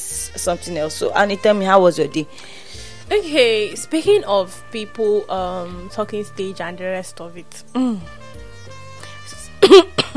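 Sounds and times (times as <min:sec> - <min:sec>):
speech: 0:00.3 - 0:08.2, 0:09.6 - 0:10.1
short cough to clear the throat: 0:09.6 - 0:10.1.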